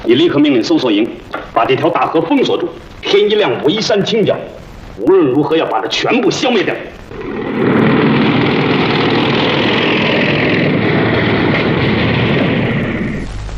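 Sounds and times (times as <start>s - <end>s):
speech: 0.1s - 7.3s
motorcycle engine roaring: 7.1s - 13.2s.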